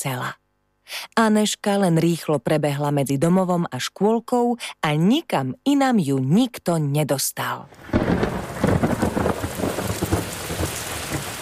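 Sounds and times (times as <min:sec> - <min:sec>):
speech: 0:00.0 - 0:08.4
rain pouring: 0:07.7 - 0:11.4
low thunder rumbling: 0:07.8 - 0:11.4.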